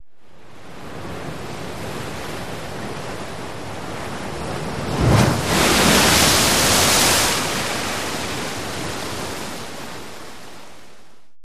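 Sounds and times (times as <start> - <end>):
waves and surf: 0.2 - 11.3
big wave crashing on rock: 4.4 - 10.0.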